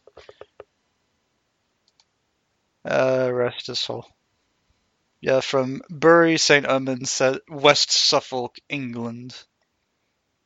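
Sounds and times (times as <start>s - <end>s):
soft keyboard typing: 0.0s - 0.7s, 1.8s - 2.1s
speech: 2.9s - 4.2s, 5.2s - 9.5s.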